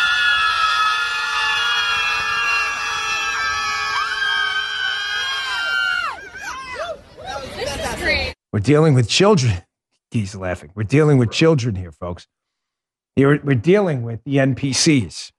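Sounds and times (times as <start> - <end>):
crowd of people screaming in a sustained piercing wail: 0.0 - 7.5
speech: 8.6 - 12.4, 13.2 - 15.3.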